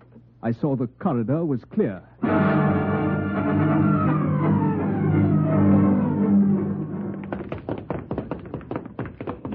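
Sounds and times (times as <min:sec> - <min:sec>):
speech: 0:00.4 - 0:02.6
low sustained droning tone: 0:02.2 - 0:07.2.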